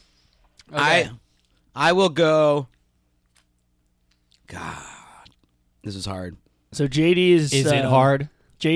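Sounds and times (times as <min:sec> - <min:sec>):
several people chewing stale dry cereal: 0:00.3 - 0:01.7, 0:02.6 - 0:05.6
speech: 0:00.7 - 0:01.2, 0:01.8 - 0:02.7, 0:04.5 - 0:04.8, 0:05.8 - 0:08.7.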